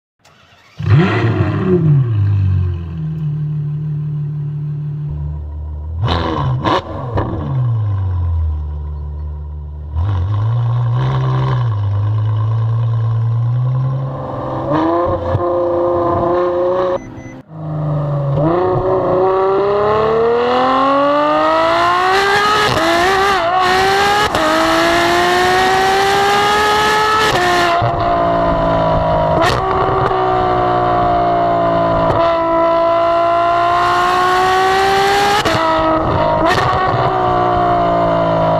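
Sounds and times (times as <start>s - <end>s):
Ferrari F12 Berlinetta engine: 0.2s - 38.5s.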